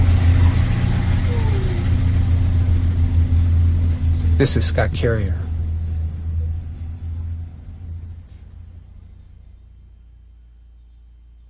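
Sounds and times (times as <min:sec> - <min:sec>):
shuttle bus engine rumble driving through a canyon: 0:00.0 - 0:11.4
shuttle bus road drone in a canyon: 0:00.0 - 0:11.4
speech: 0:04.4 - 0:05.5.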